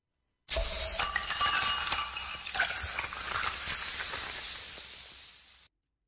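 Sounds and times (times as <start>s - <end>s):
glasses clinking together in a toast: 0.5s - 4.8s
steady hiss of noise: 0.5s - 5.7s.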